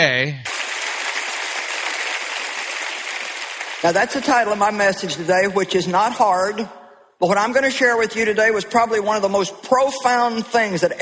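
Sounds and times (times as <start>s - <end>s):
speech: 0.0s - 0.5s, 3.8s - 11.0s
crowd applauding: 0.5s - 4.6s.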